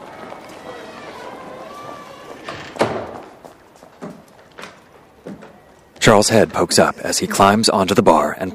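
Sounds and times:
murmur of voices: 0:00.0 - 0:02.7, 0:06.1 - 0:08.5
door swinging and thudding shut: 0:02.2 - 0:03.3
speech: 0:06.0 - 0:08.5.

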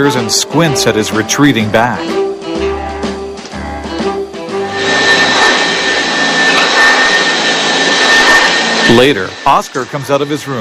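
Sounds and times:
speech: 0:00.0 - 0:02.3, 0:08.9 - 0:10.5
humming tones: 0:00.0 - 0:10.5
vacuum cleaner running with a high whine: 0:02.1 - 0:10.5.

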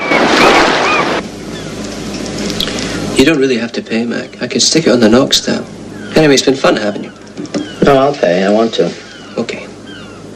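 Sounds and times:
surf breaking and sea rumbling against the shore: 0:00.0 - 0:01.2
speech: 0:03.2 - 0:07.2, 0:07.9 - 0:09.6.

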